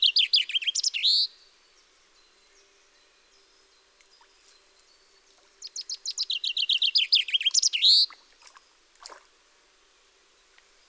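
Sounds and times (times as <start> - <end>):
common chaffinch Fringilla coelebs singing descending trill with flourish: 0.0 - 1.4, 5.6 - 8.1.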